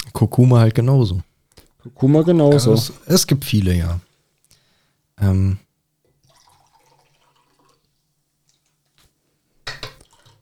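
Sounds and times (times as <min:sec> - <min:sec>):
speech: 0:00.2 - 0:04.1, 0:05.2 - 0:05.6
water poured into a glass: 0:06.2 - 0:08.8, 0:09.8 - 0:10.4.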